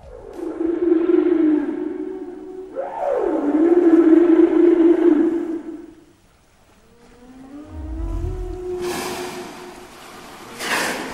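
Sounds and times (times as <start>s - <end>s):
long low moaning whale mating calls: 0.0s - 6.0s, 6.8s - 11.1s
loud rushing burst: 7.7s - 9.2s.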